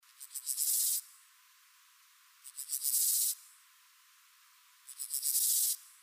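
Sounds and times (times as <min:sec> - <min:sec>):
Chorthippus dorsatus chirping: 0:00.1 - 0:01.2, 0:02.4 - 0:03.5, 0:04.8 - 0:05.9.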